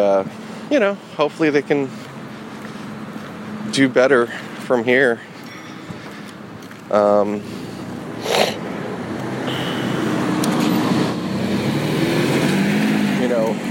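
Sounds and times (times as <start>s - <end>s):
speech: 0.0s - 2.1s, 3.7s - 5.3s, 6.9s - 8.4s
cars passing on a busy street: 0.0s - 13.6s
horn-like tone: 9.4s - 10.2s.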